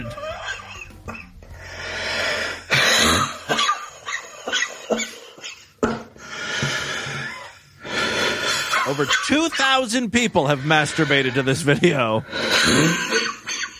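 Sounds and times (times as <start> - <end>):
man wheezing while smoking a cigarette during an asthma-like attack: 0.0 - 9.0, 10.4 - 13.7
man coughing while smoking a cigarette: 2.7 - 5.2, 11.1 - 13.5
speech: 9.0 - 13.3.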